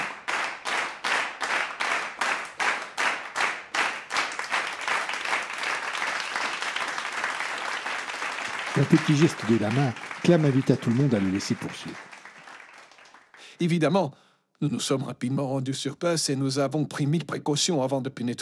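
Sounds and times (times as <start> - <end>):
audience applauding: 0.0 - 13.5
speech: 8.8 - 12.1, 13.6 - 18.4.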